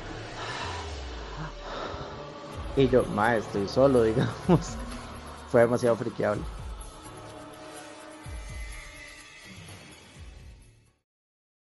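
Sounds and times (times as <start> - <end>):
person imitating heavy breathing: 0.0 - 2.5
speech: 2.8 - 4.8, 5.5 - 6.6
laughter: 4.0 - 5.1.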